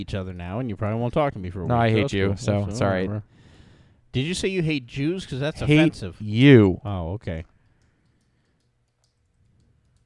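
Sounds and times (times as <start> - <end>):
speech: 0.0 - 3.5, 4.1 - 7.5
ballpoint pen clicking: 7.6 - 10.0.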